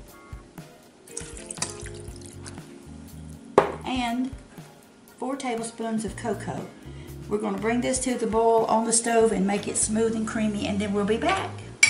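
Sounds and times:
oil and water poured into a pot with cut-up butter: 1.2 - 2.6
speech: 4.0 - 4.4, 5.2 - 11.6.

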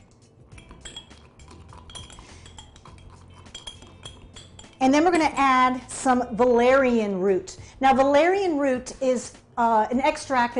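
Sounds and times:
spoon clinking and scraping against a container while stirring apples into honey: 0.0 - 5.8
speech: 4.8 - 10.5.

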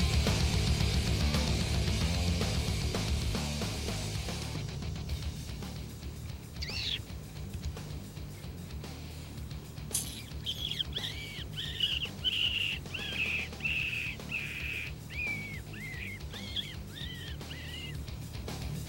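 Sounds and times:
low outdoor rumble in an open field: 0.0 - 18.8
hunter imitating a wounded rabbit's distress cry by mouth to lure a coyote: 6.6 - 7.1, 10.3 - 18.0.

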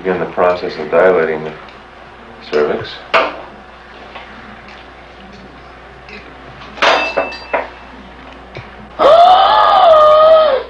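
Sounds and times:
speech: 0.0 - 1.8, 2.4 - 3.3
woman screaming: 9.0 - 10.6.

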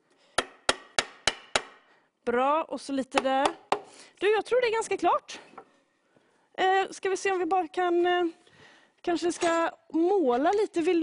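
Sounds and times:
hammer strikes: 0.4 - 1.8
speech: 2.3 - 5.4, 6.6 - 8.4, 9.0 - 11.0.

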